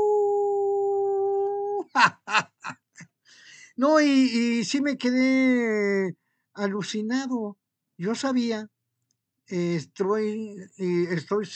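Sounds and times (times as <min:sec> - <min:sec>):
person imitating a wolf howl: 0:00.0 - 0:02.0
laughter: 0:01.8 - 0:03.1
speech: 0:02.0 - 0:03.1, 0:03.8 - 0:08.8, 0:09.5 - 0:11.5.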